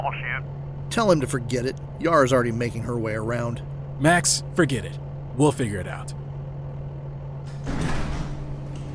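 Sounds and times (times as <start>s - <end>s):
speech: 0.0s - 6.2s
steady motor hum of bay door: 0.0s - 8.9s
large mechanical bay door grinding as it slides upward: 7.4s - 8.9s.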